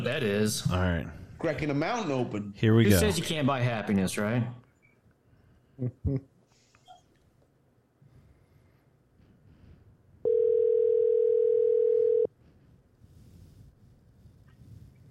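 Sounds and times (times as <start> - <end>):
speech: 0.0 - 4.6, 5.8 - 6.3
telephone tone as a phone call is placed: 10.3 - 12.3.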